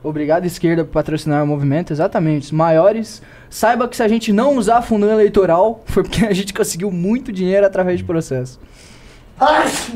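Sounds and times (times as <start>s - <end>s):
speech: 0.0s - 9.9s
sneeze: 9.4s - 9.9s.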